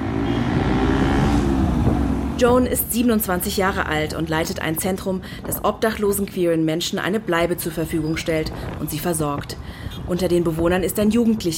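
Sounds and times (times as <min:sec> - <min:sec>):
motorcycle taxi engine drone riding through traffic: 0:00.0 - 0:04.4
broadband traffic noise: 0:00.0 - 0:11.5
speech: 0:02.4 - 0:11.5.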